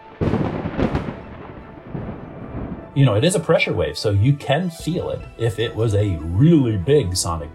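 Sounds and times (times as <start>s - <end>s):
thunder crack and rolling rumble: 0.0s - 3.2s
speech: 3.0s - 7.5s.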